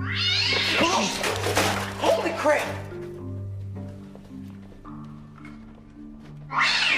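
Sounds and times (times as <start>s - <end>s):
cat caterwauling: 0.0s - 1.2s, 6.5s - 6.9s
speech: 2.4s - 2.8s.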